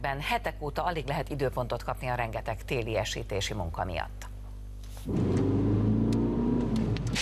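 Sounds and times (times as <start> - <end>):
speech: 0.0 - 4.3, 5.0 - 5.5
car with winter tyres braking on a slippery driving-technique track at the Hungaroring: 5.1 - 7.2.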